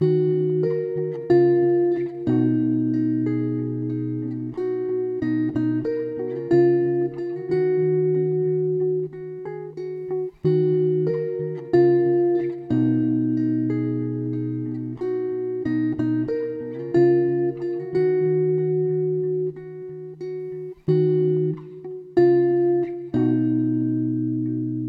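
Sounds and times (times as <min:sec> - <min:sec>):
guitar in D sharp minor: 0:00.0 - 0:24.8.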